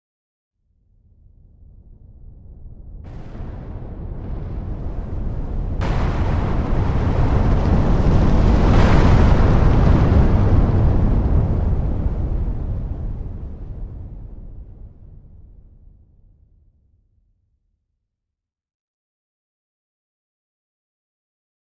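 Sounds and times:
sweeping explosion: 0:01.2 - 0:16.2
fireball burst: 0:02.5 - 0:15.7.

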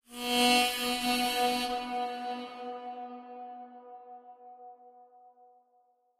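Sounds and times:
harmonica: 0:00.1 - 0:03.5.

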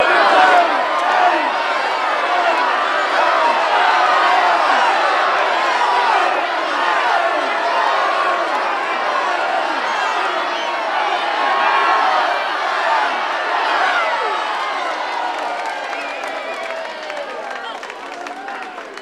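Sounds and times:
crowd cheering at a horse race track: 0:00.0 - 0:19.0.

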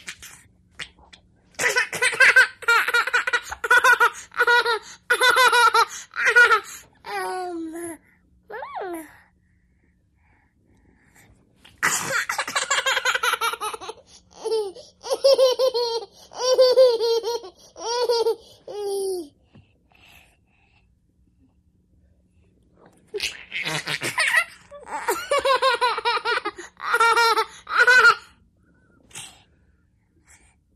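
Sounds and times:
eighteen-month-old baby girl laughing happily: 0:01.6 - 0:07.4, 0:12.0 - 0:19.3, 0:23.1 - 0:28.3.

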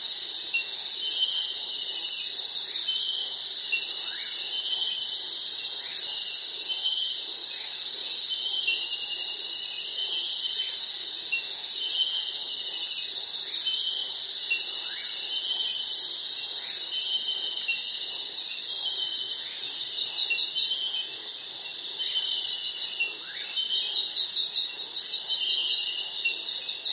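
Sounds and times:
cricket chorus trilling: 0:00.0 - 0:26.9.

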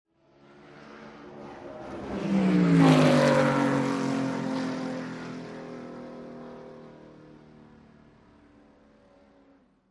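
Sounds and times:
sports car passing by: 0:00.3 - 0:07.6.

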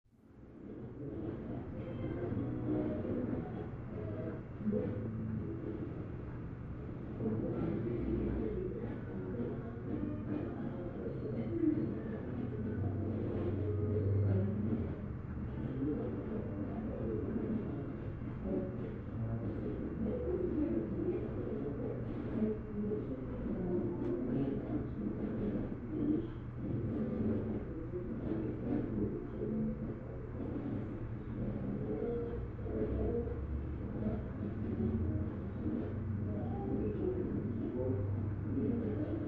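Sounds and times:
radio voices through static: 0:00.3 - 0:39.2.

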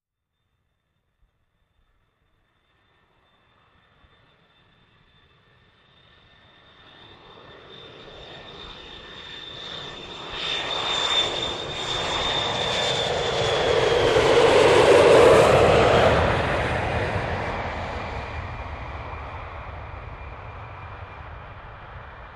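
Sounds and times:
jets flying over: 0:05.2 - 0:22.3.

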